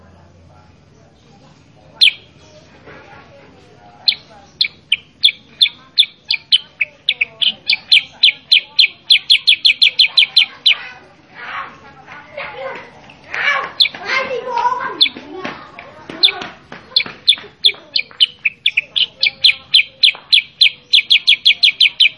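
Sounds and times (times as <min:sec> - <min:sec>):
sooty-headed bulbul song: 0:00.9 - 0:02.8, 0:04.0 - 0:10.9, 0:13.0 - 0:15.3, 0:16.0 - 0:22.1.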